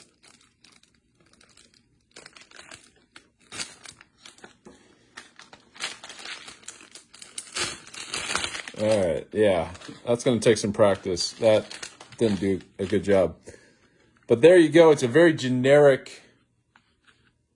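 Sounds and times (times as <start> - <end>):
plastic seal crinkling and crackling as a heating and sealing gadget cuts it open: 0.0 - 13.4
speech: 8.8 - 13.5, 14.3 - 16.2.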